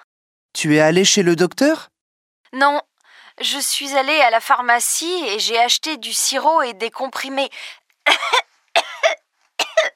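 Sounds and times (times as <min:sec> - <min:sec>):
speech: 0:00.6 - 0:01.9, 0:02.5 - 0:08.4
person with the flu coughing: 0:08.1 - 0:09.9.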